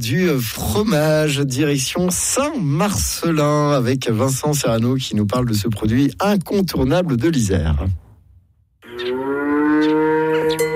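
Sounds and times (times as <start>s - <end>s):
speech: 0.0s - 8.0s
dairy cow mooing on a family farm in Saint-Just-de-Clay, Isère: 8.8s - 10.7s.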